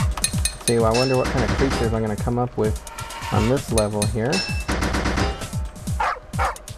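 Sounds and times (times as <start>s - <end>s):
speech: 0.7s - 4.7s
rapid gunfire-like bursts: 1.1s - 2.2s, 4.7s - 5.7s
synthetic dog barks in a pipe-fitting video game: 6.0s - 6.6s.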